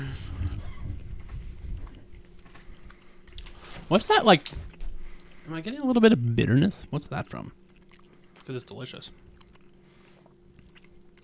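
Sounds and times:
low steady hum: 0.0 - 11.2
chewing on a beef stick: 0.4 - 6.1, 7.5 - 11.2
speech: 3.9 - 4.7, 5.5 - 7.6, 8.5 - 9.2.

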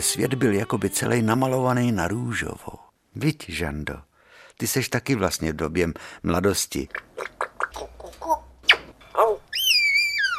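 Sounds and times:
speech: 0.0 - 7.9
baby parrot chirping and whistling: 9.5 - 10.3.

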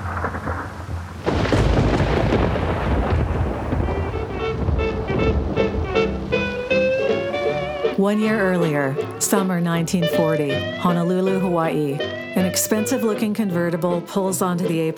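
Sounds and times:
deep rolling thunder: 0.0 - 8.0
heavy rain pouring: 0.0 - 10.9
speech: 8.0 - 14.9.

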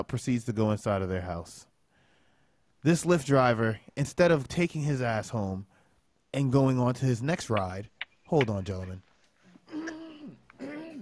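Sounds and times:
speech: 0.0 - 1.7, 2.8 - 9.1
throat clearing: 9.7 - 11.0.

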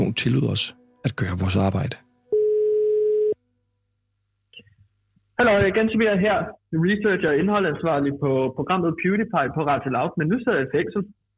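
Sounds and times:
speech: 0.2 - 2.1, 5.4 - 11.2
telephone ringing tone during outgoing call: 2.3 - 3.4.

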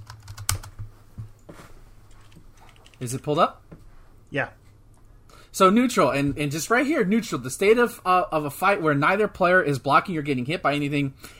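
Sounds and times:
quiet typing on a computer keyboard: 0.0 - 0.8
speech: 3.0 - 3.7, 4.3 - 4.6, 5.5 - 11.3.

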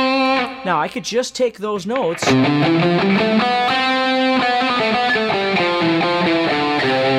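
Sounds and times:
distorted electric guitar playing the C major scale: 0.0 - 0.9, 2.0 - 7.1
speech: 0.7 - 6.0
sustained static guitar chord: 2.2 - 7.1.

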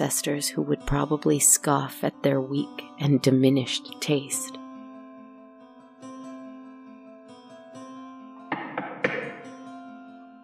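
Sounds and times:
speech: 0.0 - 4.6
knocking on a door: 8.5 - 9.5.

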